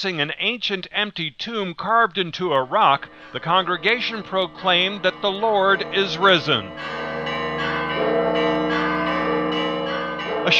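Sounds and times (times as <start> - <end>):
speech: 0.0 - 8.5
church bells ringing in Jerusalem's Old City for Easter Mass: 2.5 - 10.5.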